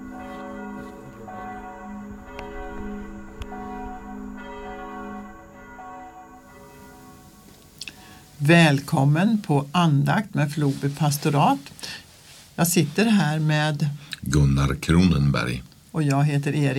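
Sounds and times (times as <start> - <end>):
church bells of Floby church in Sweden ringing: 0.0 - 9.2
speech: 8.4 - 12.0, 12.6 - 16.7.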